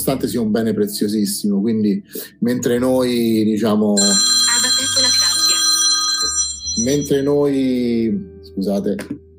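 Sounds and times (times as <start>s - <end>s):
speech: 0.1s - 4.4s, 6.8s - 9.2s
phone ringing with a bright electronic ringtone: 4.0s - 7.6s.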